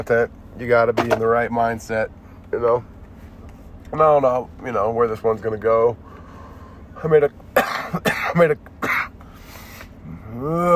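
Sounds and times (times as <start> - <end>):
speech: 0.0 - 3.0, 3.9 - 6.0, 7.0 - 8.7, 10.3 - 10.7
person coughing harshly into the microphone: 7.6 - 9.2.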